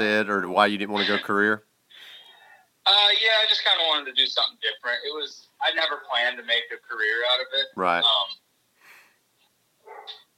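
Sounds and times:
speech: 0.0s - 1.7s, 2.9s - 8.4s
faint dog barks from a distance: 9.8s - 10.3s.

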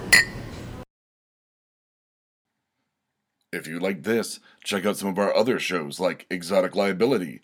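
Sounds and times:
glasses clinking in a toast: 0.0s - 0.8s
speech: 3.5s - 7.4s.

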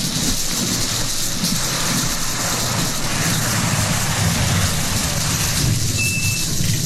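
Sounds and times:
heavy rain pouring down: 0.0s - 6.8s
deep rumble of thunder: 2.4s - 6.8s.

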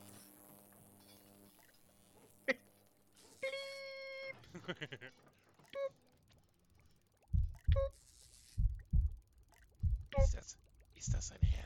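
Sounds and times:
laughter: 4.4s - 5.3s
speech: 4.6s - 5.4s
slow steady heartbeat of deep double thumps: 7.3s - 8.0s, 8.6s - 10.4s, 11.0s - 11.6s.

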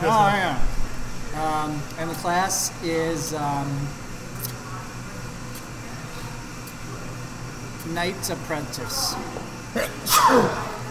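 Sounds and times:
speech: 0.1s - 0.8s, 1.4s - 4.0s, 7.8s - 10.7s
person sneezing: 9.7s - 10.7s.

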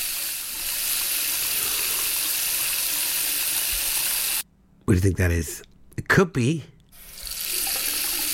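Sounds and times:
water running from a tap: 0.0s - 4.4s, 7.0s - 8.3s
speech: 4.9s - 6.7s.

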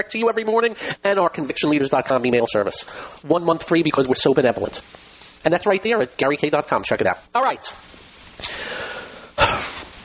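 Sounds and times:
speech: 0.0s - 9.8s
breathy coughs: 9.4s - 9.8s.

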